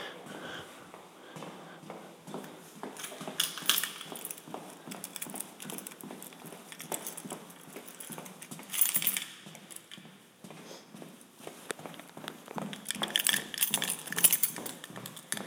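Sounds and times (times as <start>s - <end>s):
soft shuffling movement: 0.2s - 15.4s
bunch of keys jingling: 3.0s - 10.1s, 11.9s - 15.4s.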